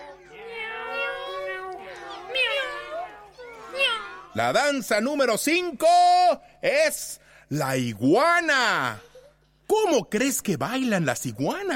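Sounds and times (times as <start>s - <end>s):
cat meowing in long wavering cries: 0.0s - 4.3s
speech: 4.4s - 9.1s, 9.7s - 11.7s.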